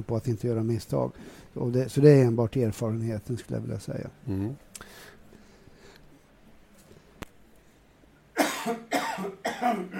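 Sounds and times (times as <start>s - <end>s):
speech: 0.0s - 5.1s, 8.7s - 8.9s
harsh coughing fit: 8.4s - 9.9s.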